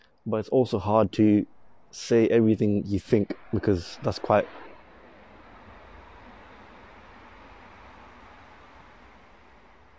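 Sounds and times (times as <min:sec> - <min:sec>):
speech: 0:00.2 - 0:04.6
train rumbling past: 0:03.2 - 0:09.9.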